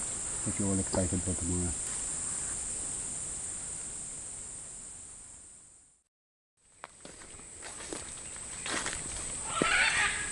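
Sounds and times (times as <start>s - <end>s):
steady high insect hiss: 0.0s - 10.3s
speech: 0.4s - 1.9s
macaws squawking overhead: 9.4s - 10.3s.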